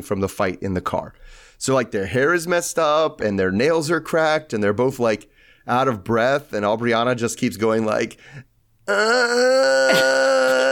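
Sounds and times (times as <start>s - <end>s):
speech: 0.0s - 10.7s
voice imitating moaning: 8.9s - 10.7s.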